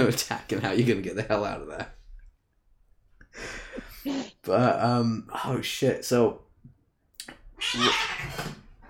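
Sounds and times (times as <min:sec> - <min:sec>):
speech: 0:00.0 - 0:02.0, 0:03.3 - 0:06.4, 0:07.6 - 0:08.6
female cat fighting another cat: 0:07.6 - 0:08.8.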